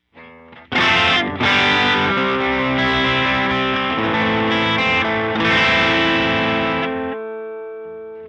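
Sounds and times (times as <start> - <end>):
bypass guitar: 0.0 - 8.2.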